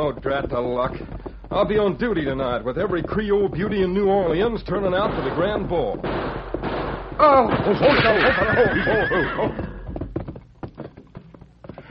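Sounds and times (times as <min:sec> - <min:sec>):
speech: 0:00.0 - 0:06.4, 0:07.2 - 0:09.8
clattering hoofbeats: 0:00.0 - 0:11.8
horse whinnying: 0:07.8 - 0:10.2.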